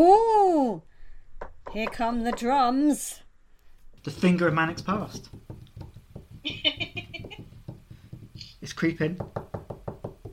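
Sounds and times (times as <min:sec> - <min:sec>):
speech: 0:01.8 - 0:03.2, 0:04.0 - 0:05.5, 0:08.7 - 0:09.4
knocking on a wooden door: 0:04.8 - 0:08.4, 0:09.2 - 0:10.3.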